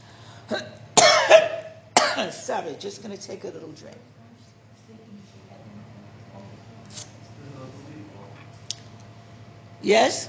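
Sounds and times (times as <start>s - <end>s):
person coughing harshly with a raspy edge: 0.5s - 2.4s
speech: 2.2s - 4.2s, 9.8s - 10.2s.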